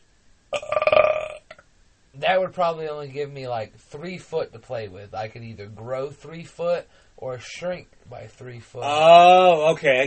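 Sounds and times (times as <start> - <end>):
deep burp: 0.5 - 1.7
speech: 2.2 - 10.0.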